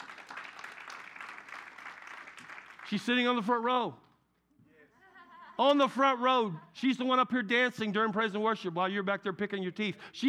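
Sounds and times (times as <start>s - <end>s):
church congregation clapping and applauding: 0.0s - 3.4s
speech: 2.9s - 4.0s, 5.6s - 10.2s
laughter: 4.7s - 7.0s.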